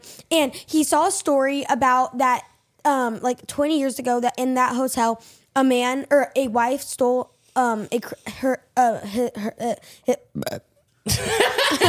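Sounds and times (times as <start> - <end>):
speech: 0.3 - 11.8
person burping out of nervousness: 10.3 - 10.6
laughter: 11.1 - 11.8.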